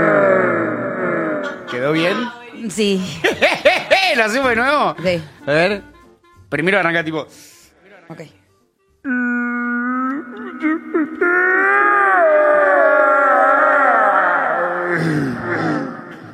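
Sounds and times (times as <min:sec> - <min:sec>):
person vocally imitating a bear's howl: 0:00.0 - 0:02.2, 0:09.0 - 0:16.2
laughter: 0:01.4 - 0:02.4, 0:03.0 - 0:04.4
speech: 0:01.9 - 0:05.9, 0:06.5 - 0:07.5, 0:08.1 - 0:08.4.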